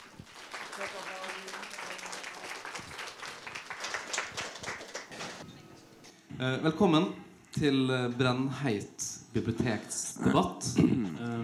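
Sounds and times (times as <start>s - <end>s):
audience in a library clapping to welcome a debate panel: 0.0s - 5.4s
speech: 6.4s - 11.4s.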